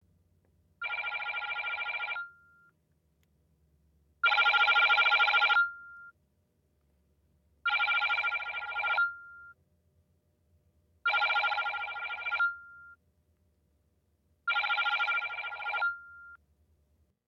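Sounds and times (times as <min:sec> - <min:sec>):
holophonic ringtone: 0:00.8 - 0:02.4, 0:04.2 - 0:06.1, 0:07.7 - 0:09.4, 0:11.1 - 0:12.9, 0:14.5 - 0:16.4.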